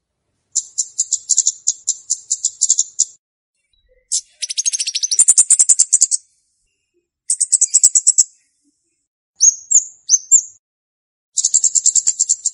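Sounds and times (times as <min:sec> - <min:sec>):
flowerpecker chirping: 0:00.5 - 0:03.2, 0:03.8 - 0:06.3, 0:07.3 - 0:08.4, 0:09.4 - 0:10.6, 0:11.4 - 0:12.5.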